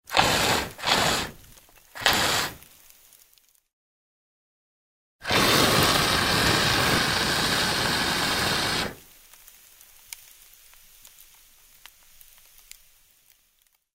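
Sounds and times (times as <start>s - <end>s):
fire extinguisher spraying: 0.0s - 2.7s, 5.2s - 9.1s.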